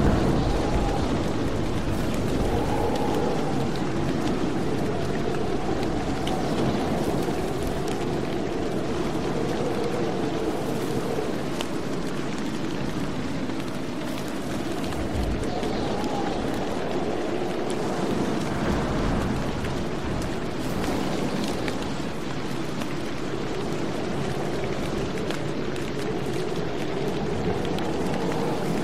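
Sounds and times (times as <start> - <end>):
deep low thunder rumble: 0.0 - 28.8
steady dense rain: 0.0 - 28.8.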